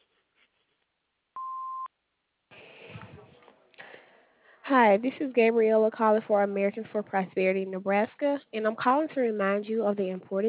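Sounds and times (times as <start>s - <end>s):
answering machine beep: 1.4s - 1.9s
speech: 4.7s - 10.4s.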